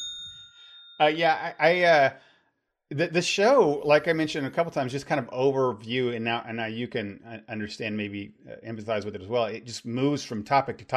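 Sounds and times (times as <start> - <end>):
bell struck with a clear ringing tone: 0.0 - 1.3
speech: 1.0 - 2.3, 2.9 - 10.9.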